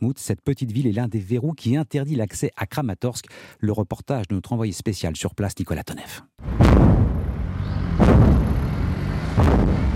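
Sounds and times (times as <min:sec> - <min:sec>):
speech: 0:00.0 - 0:07.2
artillery blasts: 0:06.4 - 0:08.6, 0:09.4 - 0:09.9
rumble: 0:06.4 - 0:09.9.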